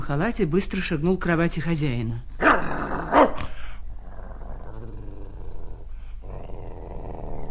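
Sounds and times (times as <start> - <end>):
speech: 0.1 - 2.7
dog growling and snarling: 2.4 - 7.4.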